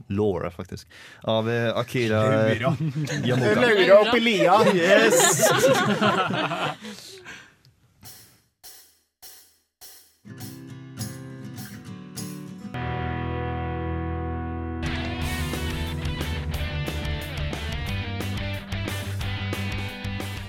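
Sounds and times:
speech: 0.1s - 7.4s
laughter: 2.1s - 7.3s
strummed chords: 10.3s - 20.4s.

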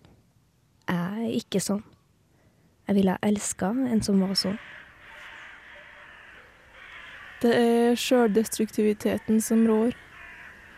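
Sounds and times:
speech: 1.3s - 2.0s, 2.9s - 4.8s, 7.4s - 10.1s
crows cawing: 4.3s - 10.7s.

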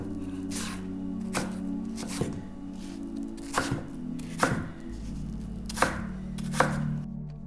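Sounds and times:
knife cutting apples on a board: 0.0s - 2.4s, 3.4s - 4.7s, 5.7s - 6.9s
low steady hum: 0.0s - 7.4s.

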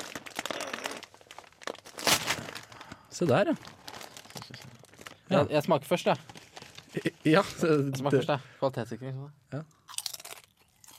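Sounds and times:
bag of coarse salted potato chips crinkling as it is opened: 0.0s - 5.3s, 6.2s - 7.3s
speech: 3.2s - 3.8s, 5.3s - 9.8s.

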